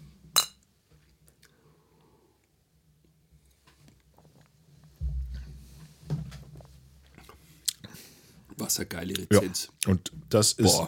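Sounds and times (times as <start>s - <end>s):
beer glasses clinking in a toast: 0.4s - 0.6s
speech: 8.6s - 10.8s.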